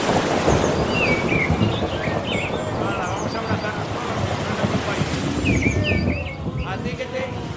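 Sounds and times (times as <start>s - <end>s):
low rolling thunder rumbling: 0.0s - 7.5s
ocean waves: 0.0s - 7.5s
faint bird chirps: 0.6s - 3.8s, 5.4s - 6.8s.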